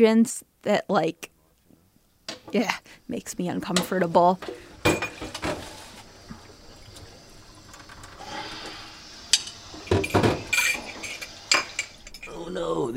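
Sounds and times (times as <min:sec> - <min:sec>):
speech: 0:00.0 - 0:01.3, 0:02.5 - 0:05.5
faint running-water hiss: 0:02.1 - 0:12.9
pots and cutlery clinking while dishes are washed: 0:03.8 - 0:05.9, 0:09.3 - 0:12.4.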